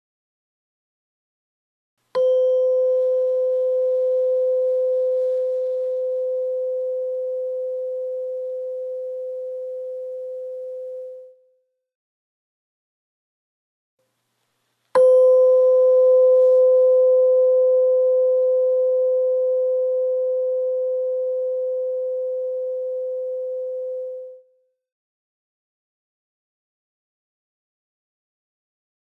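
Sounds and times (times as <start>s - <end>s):
tuning fork struck and ringing: 2.1s - 11.6s, 15.0s - 24.6s.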